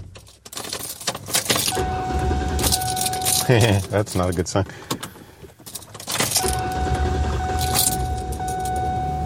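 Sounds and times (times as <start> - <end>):
car keys jangling: 0.1 - 1.8, 2.5 - 4.5, 5.5 - 6.7, 7.5 - 8.8
car engine starting up after repair work: 0.9 - 9.2
speech: 3.5 - 5.0.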